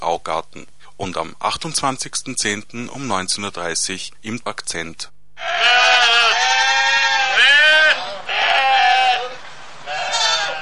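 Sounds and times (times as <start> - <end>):
speech: 0.1 - 6.4
sheep bleating: 5.4 - 10.6.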